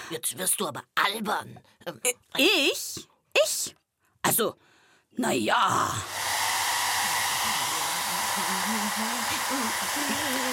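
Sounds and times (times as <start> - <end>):
speech: 0.1 - 6.2, 8.4 - 10.5
hair dryer blowing with a loud whooshing roar: 6.0 - 10.5.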